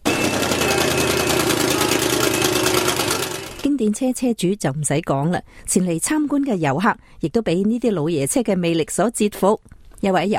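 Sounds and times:
classic race car engine running: 0:00.0 - 0:03.7
speech: 0:03.8 - 0:10.3.

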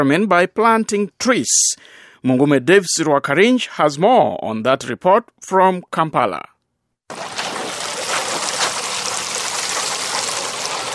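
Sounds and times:
speech: 0:00.0 - 0:06.5
water poured onto the soil of a tree nursery bed in northern Uganda: 0:07.1 - 0:10.9.

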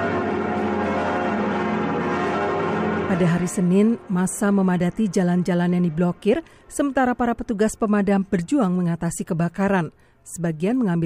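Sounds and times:
cathedral bells ringing from the south tower: 0:00.0 - 0:06.3
speech: 0:03.1 - 0:11.0.

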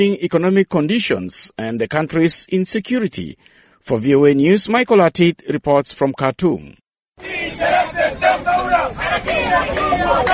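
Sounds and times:
speech: 0:00.0 - 0:10.3
protest crowd shouting and chanting in the streets of Khartoum, Sudan: 0:07.2 - 0:10.3.

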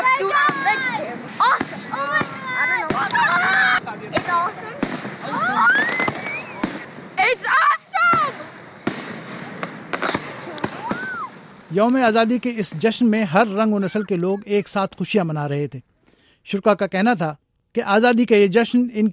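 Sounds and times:
fireworks bangs over a lake at an Independence Day celebration: 0:00.0 - 0:14.4
speech: 0:11.7 - 0:19.1.

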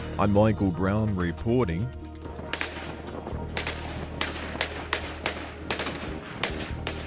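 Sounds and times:
speech: 0:00.2 - 0:02.0
steady low rumble of battle noise: 0:00.2 - 0:07.0
gunshots in a city battle: 0:02.3 - 0:07.0.

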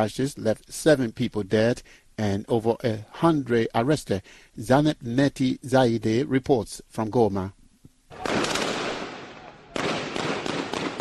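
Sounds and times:
speech: 0:00.0 - 0:07.6
rapid gunfire between buildings on a city street: 0:08.1 - 0:10.9.

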